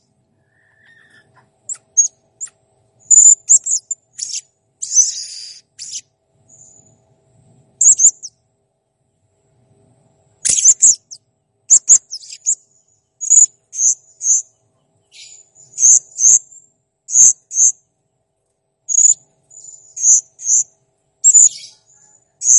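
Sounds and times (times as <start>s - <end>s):
blue-crowned hanging parrot chirping: 0.5s - 6.8s, 7.8s - 8.3s, 10.4s - 12.6s, 13.2s - 14.4s, 15.1s - 16.4s, 17.1s - 17.7s, 18.9s - 22.5s.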